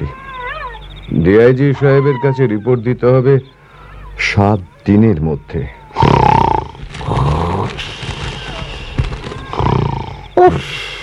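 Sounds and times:
speech: 1.1s - 3.6s, 4.2s - 6.2s, 10.4s - 10.8s
police constable loud snoring asleep at a remote police outpost: 6.0s - 7.9s.

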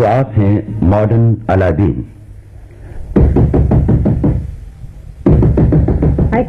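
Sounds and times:
speech: 0.0s - 2.2s, 3.2s - 4.0s
firm knocking on a door: 3.1s - 4.5s, 5.2s - 6.4s.

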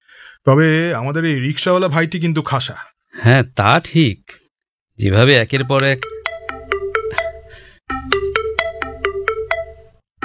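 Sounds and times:
speech: 0.4s - 4.4s, 5.0s - 6.1s
phone ringtone with bright electronic melody: 5.6s - 10.2s.

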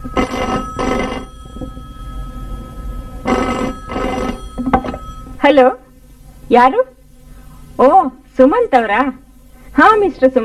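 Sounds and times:
telephone ringing with double rings: 0.0s - 5.4s
speech: 5.4s - 5.8s, 6.5s - 6.9s, 7.8s - 9.2s, 9.8s - 10.4s.

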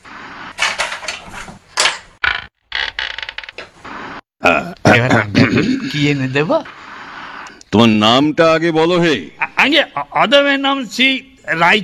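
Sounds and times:
hotel saloon door creaking and clattering open: 0.6s - 3.8s
speech: 5.0s - 6.9s, 7.7s - 11.8s.

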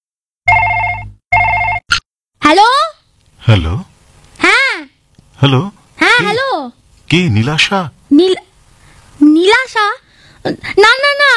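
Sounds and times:
telephone ringing with a bright bell-like electronic trill: 0.5s - 1.8s
speech: 2.5s - 2.8s, 3.5s - 3.9s, 5.4s - 8.5s, 9.2s - 11.3s.

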